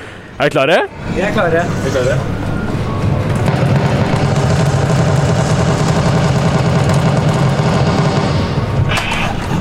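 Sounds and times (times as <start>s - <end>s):
speech: 0.4s - 2.4s
deep rumbling arcade shooting game effects: 0.9s - 9.6s
rapid mechanical gunfire from an arcade shooting game: 3.4s - 8.8s.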